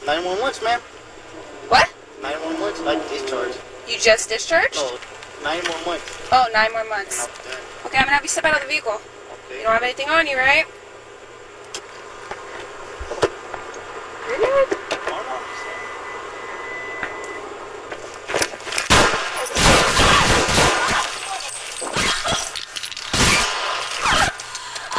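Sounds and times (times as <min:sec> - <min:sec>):
speech: 0:00.1 - 0:10.8, 0:14.3 - 0:14.8
gunshots fired during a police traffic stop: 0:18.8 - 0:22.4, 0:23.1 - 0:24.4.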